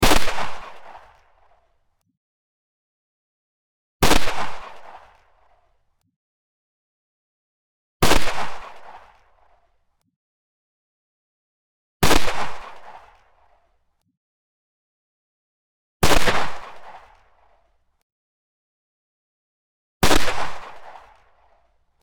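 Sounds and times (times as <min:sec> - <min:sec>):
pistol gunshot: 0:00.0 - 0:01.2, 0:04.0 - 0:04.9, 0:08.0 - 0:08.8, 0:12.0 - 0:12.9, 0:16.0 - 0:16.9, 0:20.0 - 0:21.2.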